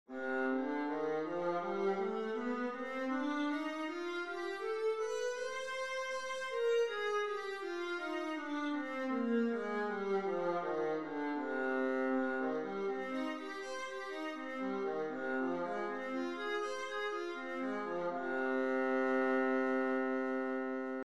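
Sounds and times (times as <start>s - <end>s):
viola playing C minor scales: 0.1s - 21.0s.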